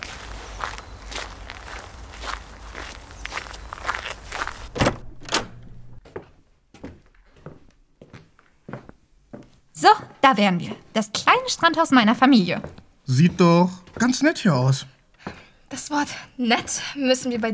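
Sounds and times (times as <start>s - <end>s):
footsteps of people walking into a beach house: 0.0s - 5.0s
noise: 0.0s - 5.0s
speech: 9.8s - 15.0s, 15.8s - 17.5s.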